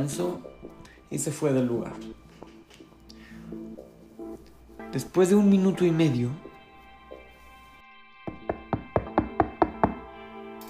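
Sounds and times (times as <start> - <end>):
speech: 0.0 - 2.2, 4.9 - 6.4
knocking on a door: 8.3 - 10.1.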